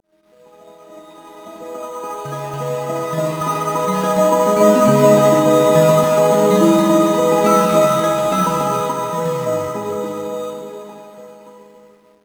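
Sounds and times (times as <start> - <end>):
melodies: 2.3 - 11.6.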